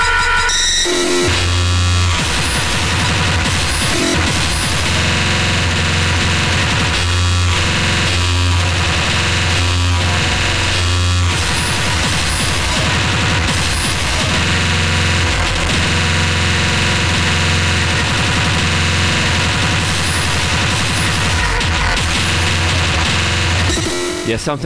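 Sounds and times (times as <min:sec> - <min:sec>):
harsh noise music with static, distortion and low rumble: 0:00.0 - 0:24.6
speech: 0:24.4 - 0:24.6.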